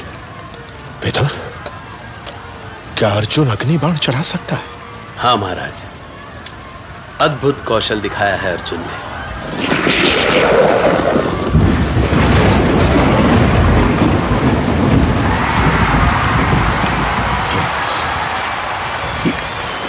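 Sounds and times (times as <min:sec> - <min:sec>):
heavy rain pouring: 0:00.0 - 0:19.8
speech: 0:01.0 - 0:01.6, 0:03.0 - 0:06.0, 0:07.2 - 0:11.2
deep rumbling thunder: 0:08.8 - 0:19.8.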